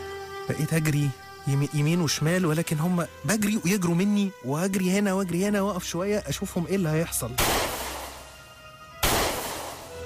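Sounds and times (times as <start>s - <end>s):
speech: 0.5s - 7.7s
single gunshot fired during a chase: 7.4s - 8.3s, 9.0s - 9.9s.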